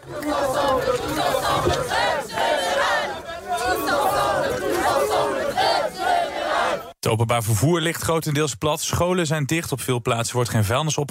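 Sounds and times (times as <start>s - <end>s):
large crowd shouting and chanting at a mass strike over pensions in France: 0.0s - 7.0s
speech: 7.1s - 11.0s.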